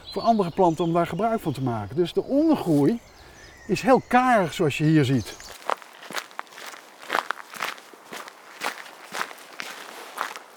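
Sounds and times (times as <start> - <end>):
speech: 0.2 - 5.6
footsteps crunching and rustling along a forest path: 4.8 - 10.5.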